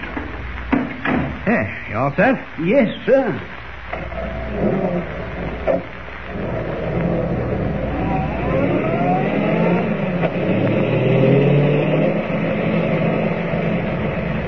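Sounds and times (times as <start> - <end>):
speech: 1.5 - 6.0
car engine revving as the car drives up to an abandoned gold mine: 4.1 - 14.4.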